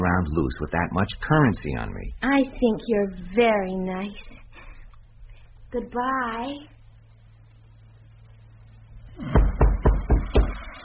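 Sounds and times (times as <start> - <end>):
speech: 0.1 - 4.4, 5.7 - 6.7, 9.2 - 9.4
knocking on a rooming house door: 9.2 - 10.6.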